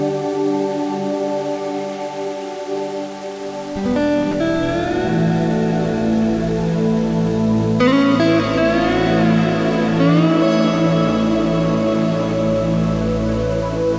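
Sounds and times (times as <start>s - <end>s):
soft ambient chords: 0.0s - 13.9s
slide guitar notes gliding and bending: 3.7s - 13.9s.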